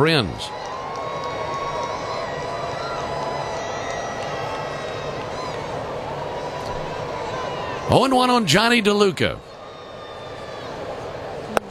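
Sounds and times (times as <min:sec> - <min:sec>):
speech: 0:00.0 - 0:00.6, 0:07.9 - 0:09.5
stadium crowd section cheering for a baserunner: 0:00.0 - 0:11.6.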